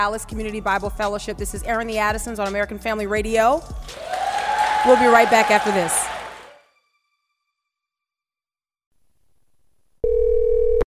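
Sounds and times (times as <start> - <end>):
speech: 0.0 - 4.2, 4.8 - 6.0
telephone ringing with a steady electronic tone: 10.0 - 10.8.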